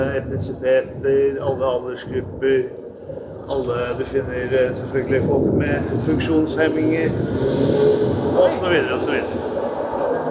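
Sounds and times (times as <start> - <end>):
speech: 0.0 - 9.5
city street traffic played as a sound installation: 6.1 - 10.2.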